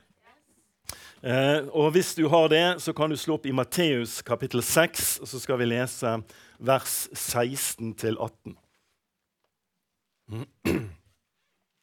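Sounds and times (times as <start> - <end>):
speech: 1.2 - 8.6, 10.3 - 11.0
rough gravelly throat clearing: 10.3 - 11.2.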